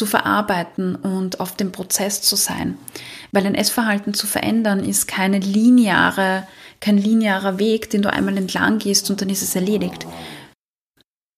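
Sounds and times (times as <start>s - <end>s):
speech: 0.0s - 10.4s
dog snuffling snort: 8.2s - 10.4s
dog snoring: 9.2s - 10.6s.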